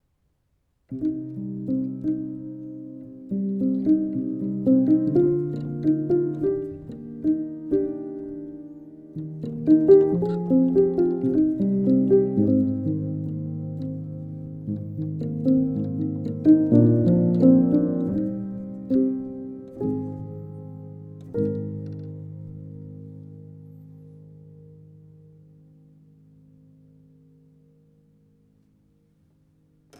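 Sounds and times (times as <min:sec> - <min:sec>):
upright piano recorded with a ribbon microphone: 0:00.9 - 0:29.9.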